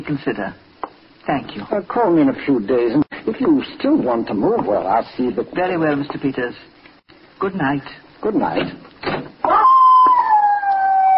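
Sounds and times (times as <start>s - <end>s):
speech: 0.0s - 0.6s, 1.3s - 6.8s, 7.4s - 8.9s
dog howling: 9.4s - 11.1s.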